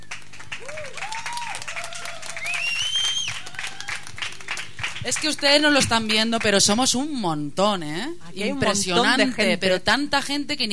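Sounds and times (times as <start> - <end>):
crowd clapping at an open-day street gathering outside a squatted social centre: 0.0 - 7.2
speech: 5.0 - 10.7.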